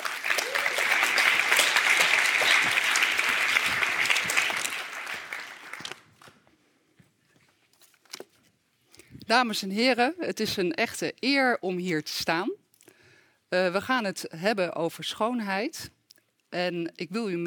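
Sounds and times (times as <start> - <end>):
audience applause welcoming a speaker to a lecture: 0.0 - 6.4
speech: 9.3 - 12.6, 13.5 - 17.4.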